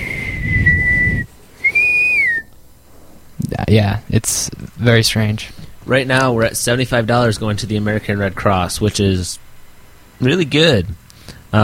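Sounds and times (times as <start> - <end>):
person whistling sustained steady tones: 0.0 - 2.5
speech: 3.7 - 9.4, 10.2 - 11.6.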